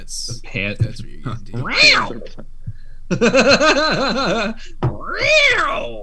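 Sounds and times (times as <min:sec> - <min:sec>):
speech: 0:00.1 - 0:02.5, 0:03.1 - 0:06.0
cat meowing: 0:01.6 - 0:02.4, 0:05.0 - 0:06.0
laughter: 0:03.1 - 0:04.6.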